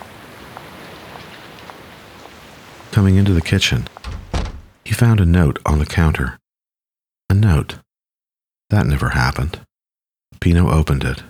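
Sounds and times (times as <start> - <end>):
steady rain: 0.0 - 4.8
wind: 0.0 - 5.0
speech: 2.9 - 4.0, 4.9 - 6.4, 7.3 - 7.8, 8.7 - 9.7, 10.4 - 11.2.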